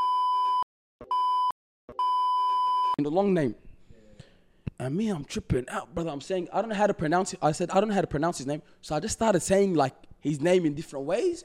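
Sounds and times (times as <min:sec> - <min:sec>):
censor bleeps covering a spoken name: 0:00.0 - 0:03.0
speech: 0:03.0 - 0:03.6, 0:04.8 - 0:11.4.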